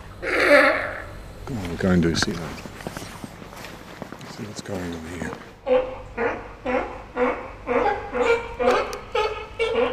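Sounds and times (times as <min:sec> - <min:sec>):
animal barking alarm calls: 0:00.2 - 0:01.3, 0:05.6 - 0:09.9
speech: 0:01.5 - 0:02.7, 0:04.4 - 0:06.4.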